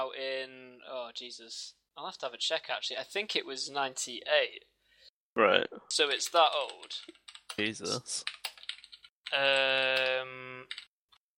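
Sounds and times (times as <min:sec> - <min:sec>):
speech: 0:00.1 - 0:04.7, 0:05.4 - 0:08.4, 0:09.3 - 0:10.9
computer keyboard typing: 0:06.2 - 0:10.9.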